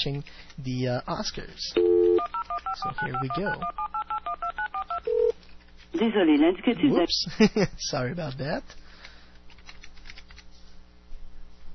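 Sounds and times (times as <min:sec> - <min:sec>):
speech: 0:00.0 - 0:01.9, 0:02.6 - 0:04.0, 0:05.9 - 0:08.8
dual-pitched telephone keypad dialing beeps: 0:01.8 - 0:05.3.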